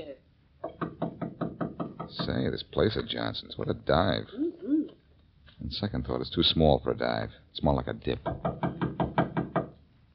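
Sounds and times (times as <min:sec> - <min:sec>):
knocking on a wooden door: 0:00.6 - 0:02.4, 0:08.2 - 0:09.8
speech: 0:02.1 - 0:04.4, 0:05.7 - 0:08.7.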